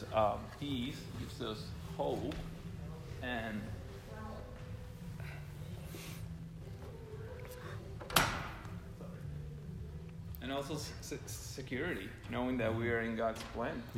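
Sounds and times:
low hum: 0.0s - 13.9s
speech: 0.2s - 2.6s, 3.2s - 3.8s, 10.4s - 13.9s
door shutting: 8.0s - 8.7s.

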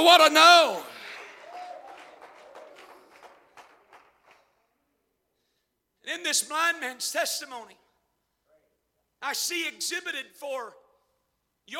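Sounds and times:
speech: 0.0s - 1.0s, 6.1s - 7.8s, 9.2s - 10.8s
audience clapping hands: 0.5s - 4.7s.

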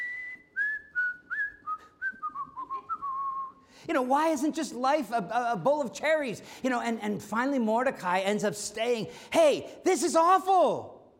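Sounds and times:
person whistling a tune: 0.0s - 3.7s
speech: 3.8s - 11.0s.

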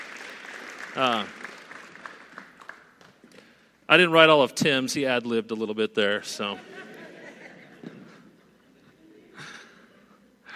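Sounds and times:
church audience applauding: 0.0s - 3.2s
speech: 1.0s - 1.5s, 3.9s - 6.7s
laughter: 6.3s - 10.1s.

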